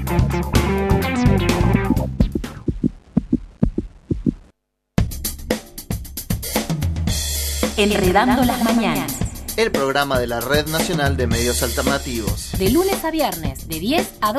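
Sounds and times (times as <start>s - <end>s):
music: 0.0s - 3.0s, 5.0s - 14.3s
speech: 0.1s - 0.9s, 7.8s - 14.3s
heartbeat thumping: 1.5s - 4.5s, 7.8s - 11.4s.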